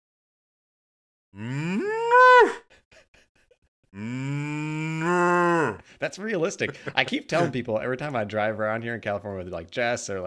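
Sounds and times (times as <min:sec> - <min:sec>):
person imitating a cow mooing: 0:01.4 - 0:02.6, 0:04.0 - 0:05.8
speech: 0:06.0 - 0:10.2.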